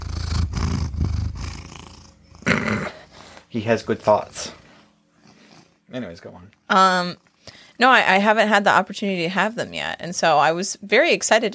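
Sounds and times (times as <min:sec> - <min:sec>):
cat purring while being held: 0:00.0 - 0:05.9
speech: 0:03.5 - 0:04.6, 0:05.9 - 0:11.5.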